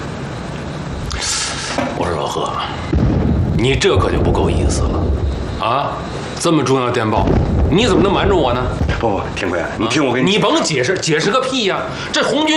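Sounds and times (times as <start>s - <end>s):
people talking: 1.1s - 2.9s, 3.6s - 12.5s
distant gunfire and artillery booms: 2.9s - 6.3s, 7.2s - 10.1s.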